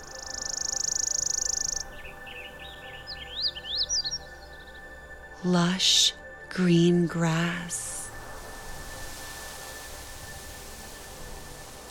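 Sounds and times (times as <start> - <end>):
birds singing outdoors: 0.0 - 5.3
speech: 5.4 - 8.0.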